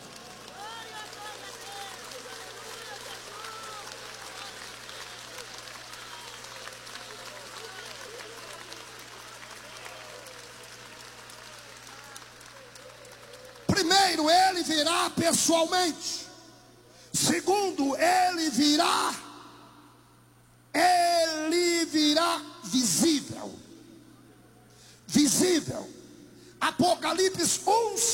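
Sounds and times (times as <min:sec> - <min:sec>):
large crowd applause: 0:00.0 - 0:16.0
faint electrical hum: 0:00.0 - 0:28.1
speech: 0:14.2 - 0:16.2, 0:17.4 - 0:19.2.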